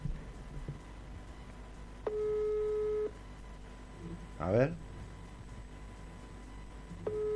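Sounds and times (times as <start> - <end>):
outgoing call ringing tone: 2.1 - 3.1, 7.1 - 7.3
speech: 4.4 - 4.9.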